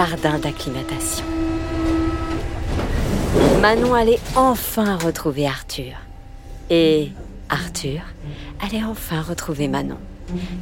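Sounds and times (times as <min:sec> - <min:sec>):
speech: 0:00.0 - 0:01.8, 0:03.3 - 0:06.0, 0:06.7 - 0:10.6
metro train rumbling at range: 0:00.0 - 0:10.6
sustained tonal whine of a metro train: 0:00.0 - 0:10.6.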